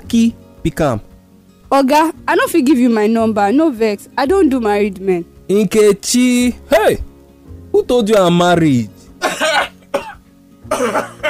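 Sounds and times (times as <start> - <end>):
speech: 0.1 - 1.1, 1.7 - 7.1, 7.8 - 8.9, 10.7 - 11.2
sharp throaty coughs: 9.2 - 11.2
throat clearing: 9.2 - 11.2.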